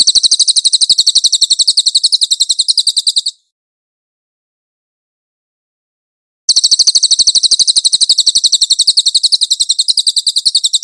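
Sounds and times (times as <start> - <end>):
cililin singing a brisk high-pitched trill: 0.0 - 3.5, 6.5 - 10.8.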